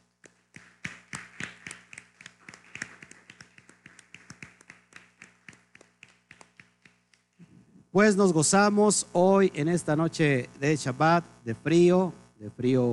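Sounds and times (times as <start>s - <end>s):
one or a few people applauding: 0.2s - 7.3s
speech: 8.0s - 12.9s.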